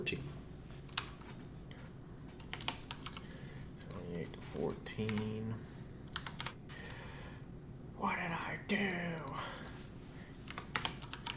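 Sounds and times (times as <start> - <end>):
speech: 0.0 - 0.3, 4.5 - 5.7, 8.0 - 9.6
typing on a computer keyboard: 2.4 - 4.0, 5.0 - 5.4, 6.1 - 6.6, 10.5 - 11.3.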